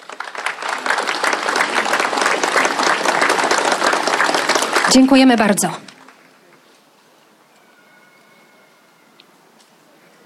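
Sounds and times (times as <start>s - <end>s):
large audience applauding at an awards ceremony: 0.0s - 6.6s
speech: 4.9s - 5.9s.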